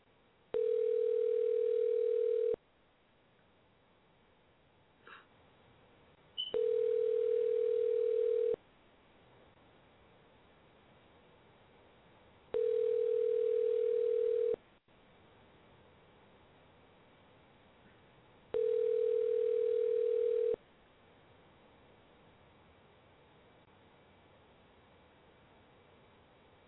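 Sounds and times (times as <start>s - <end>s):
telephone line tone: 0.6s - 2.6s, 6.4s - 8.6s, 12.6s - 14.6s, 18.6s - 20.6s
quiet phone-line hiss: 6.4s - 8.6s, 12.6s - 14.6s, 18.6s - 20.6s.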